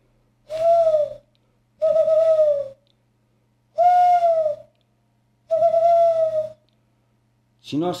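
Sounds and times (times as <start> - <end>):
person at home whistling in imitation of a bird call: 0.5 - 2.8, 3.8 - 4.7, 5.5 - 6.6
speech: 7.7 - 7.9.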